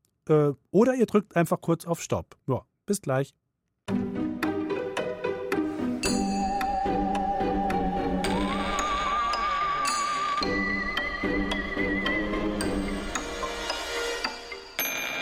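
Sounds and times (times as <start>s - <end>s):
speech: 0.3s - 4.0s
bright busy instrumental music interlude with wavering melodic lead: 3.9s - 15.1s.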